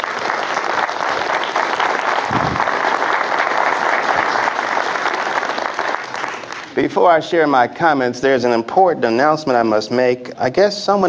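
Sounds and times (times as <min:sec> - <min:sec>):
large audience applause: 0:00.0 - 0:06.8
speech: 0:06.8 - 0:11.0.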